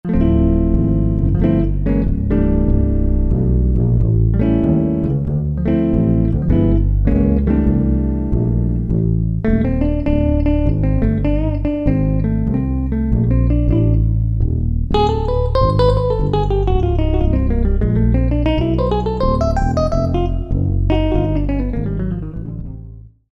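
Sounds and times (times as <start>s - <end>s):
jazz guitar duo factory preset demo on a Roland D-50 synthesizer: 0.0s - 23.1s.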